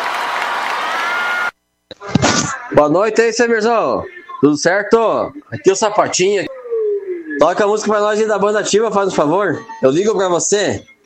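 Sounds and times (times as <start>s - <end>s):
audience applause and cheering at a live band show: 0.0s - 1.6s
speech: 2.8s - 6.5s, 7.4s - 10.9s.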